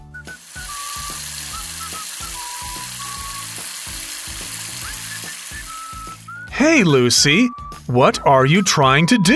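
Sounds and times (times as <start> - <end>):
faucet running in a hissing stream: 0.2 - 6.5
toothbrush scrubbing teeth: 0.4 - 6.2
speech: 6.6 - 9.3.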